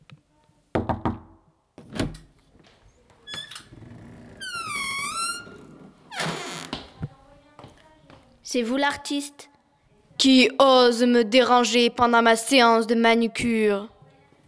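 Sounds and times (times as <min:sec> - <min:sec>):
solid knocks on a door in a corridor: 0:00.8 - 0:01.4
door creaking open with a long squeak: 0:03.2 - 0:07.0
speech: 0:08.5 - 0:09.5, 0:10.2 - 0:13.9.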